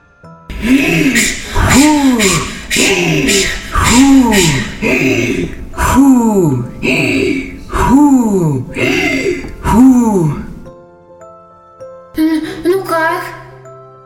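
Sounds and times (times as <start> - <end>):
heavy breathing with groaning exhales: 0.5 - 10.7
speech: 0.6 - 6.6.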